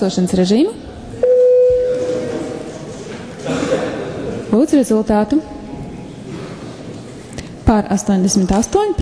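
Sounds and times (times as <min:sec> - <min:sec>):
speech: 0:00.0 - 0:00.9, 0:04.6 - 0:05.6, 0:07.7 - 0:09.0
low murmur: 0:00.0 - 0:08.8
parliamentary voting bell electronic tone: 0:01.2 - 0:02.5.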